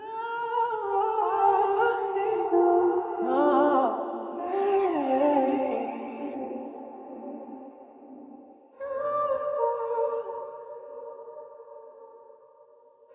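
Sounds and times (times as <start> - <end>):
person singing in G minor: 0.0 - 10.5.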